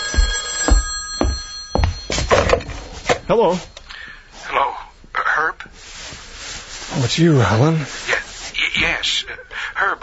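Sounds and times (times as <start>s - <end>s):
telephone bell ringing: 0.0s - 4.0s
speech: 3.3s - 3.7s, 7.0s - 8.0s, 8.8s - 10.0s.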